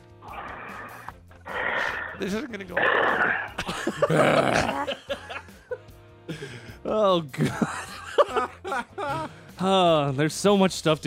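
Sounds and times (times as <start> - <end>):
rasping snore: 0.2 - 4.8
speech: 2.2 - 5.2, 6.9 - 7.8, 9.0 - 11.0
man coughing and choking: 2.8 - 5.4
laughter: 3.5 - 9.5.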